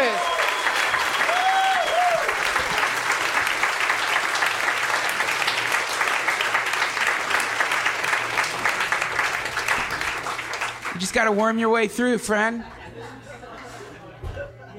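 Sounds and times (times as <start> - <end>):
sustained applause from a sizable crowd welcoming a musician: 0.0 - 11.6
whistle: 0.1 - 2.0
speech: 11.1 - 13.2
laughter: 12.4 - 14.7.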